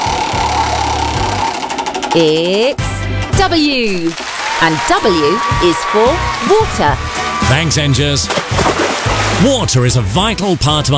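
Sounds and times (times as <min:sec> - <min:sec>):
wheel spinning with fast steady mechanical clicking and whirring: 0:00.0 - 0:06.5
speech: 0:02.1 - 0:08.8, 0:09.4 - 0:10.9.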